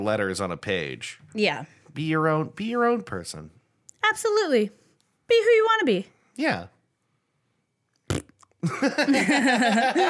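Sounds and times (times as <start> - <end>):
speech: 0.0 - 6.8, 8.6 - 10.0
fart noise: 8.1 - 8.6
laughter: 8.6 - 10.0.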